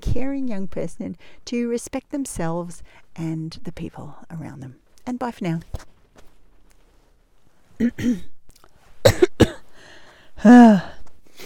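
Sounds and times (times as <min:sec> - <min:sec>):
speech: 0:00.2 - 0:05.9, 0:07.8 - 0:08.3, 0:10.4 - 0:11.0
person coughing with rough bursts and sharp hacks: 0:07.8 - 0:08.3, 0:09.0 - 0:09.6.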